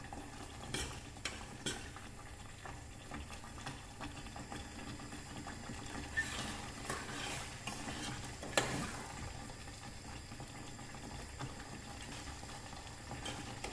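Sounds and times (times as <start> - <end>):
thickening mixture bubbling in a steel pot: 0.0 - 13.7
spoon stirring a thickening mixture in a steel pot: 0.4 - 2.1, 6.1 - 9.0.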